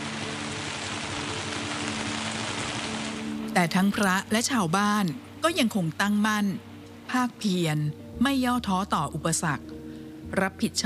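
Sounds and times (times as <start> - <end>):
steady rain pattering on surfaces: 0.0 - 7.0
speech: 3.6 - 9.7, 10.3 - 10.8.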